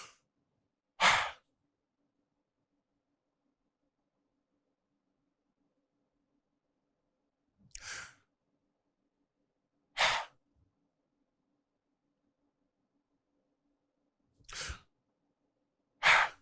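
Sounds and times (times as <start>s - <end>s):
exaggerated deliberate breathing: 0.0s - 0.2s, 1.0s - 1.5s, 7.7s - 8.3s, 10.0s - 10.4s, 14.5s - 14.9s, 16.0s - 16.4s.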